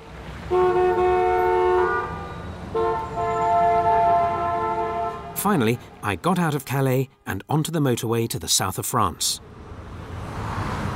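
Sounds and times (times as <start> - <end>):
heavy traffic rumble in Calais France: 0.0 - 10.9
long loud car horn blasts in Calais France: 0.5 - 6.0
speech: 5.4 - 9.6.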